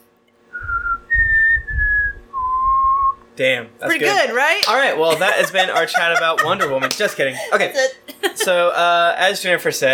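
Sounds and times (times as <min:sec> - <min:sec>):
person whistling a short four-note tune: 0:00.6 - 0:03.2
speech: 0:03.4 - 0:09.9
laughter: 0:05.0 - 0:09.0.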